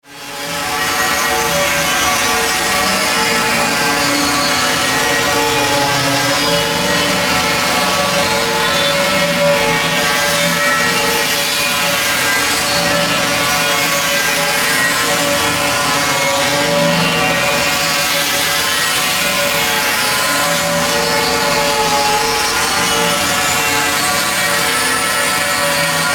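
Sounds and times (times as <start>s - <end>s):
distorted static drone with modulated sweep: 0.6s - 26.1s.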